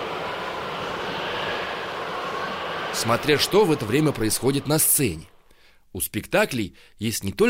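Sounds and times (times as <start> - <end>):
whistling wind: 0.0 - 5.4
speech: 3.0 - 5.3, 5.9 - 7.4.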